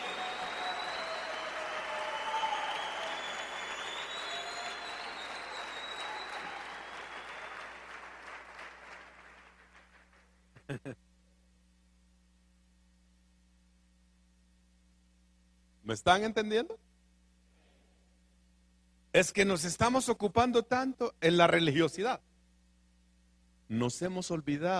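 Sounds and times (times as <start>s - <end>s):
crowd clapping: 0.0s - 10.4s
speech: 10.8s - 11.0s, 15.9s - 16.8s, 19.2s - 22.3s, 23.7s - 24.7s.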